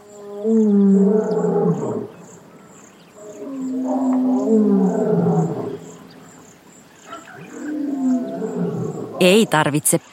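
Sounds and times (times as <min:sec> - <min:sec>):
distant fierce roars of a large wild animal: 0:00.0 - 0:02.4, 0:03.2 - 0:06.4, 0:07.1 - 0:09.2
insects chirping: 0:00.0 - 0:10.1
speech: 0:00.4 - 0:02.1, 0:09.2 - 0:10.1.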